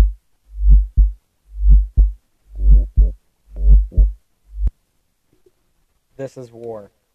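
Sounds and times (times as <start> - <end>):
synthetic electronic heartbeat sound effect: 0.0 - 4.7
speech: 6.2 - 7.0.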